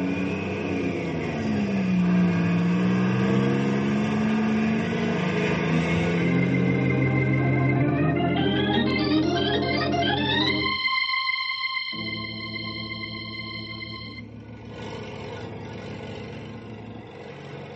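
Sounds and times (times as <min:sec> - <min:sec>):
loud truck engine revving and rumbling as it pulls away: 0:00.0 - 0:10.8, 0:12.0 - 0:17.7.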